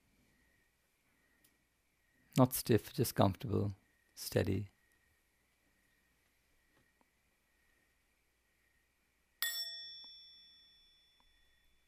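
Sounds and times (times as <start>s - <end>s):
speech: 2.4s - 4.7s
single bell struck: 9.4s - 11.7s.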